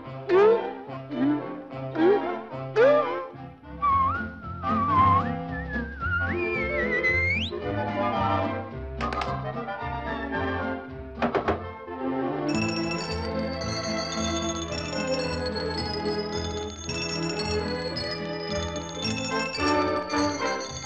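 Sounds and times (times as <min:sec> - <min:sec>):
lively instrumental backing: 0:00.0 - 0:20.8
bright whistled notes sliding and rising in pitch: 0:03.8 - 0:08.4, 0:12.5 - 0:20.8
crisp percussive knocks: 0:11.2 - 0:11.6.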